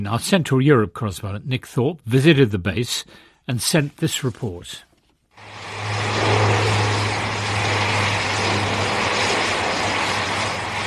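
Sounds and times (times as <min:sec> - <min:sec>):
speech: 0:00.0 - 0:05.6
C-130 transport plane propeller engines droning as it lands and taxis: 0:05.4 - 0:10.8.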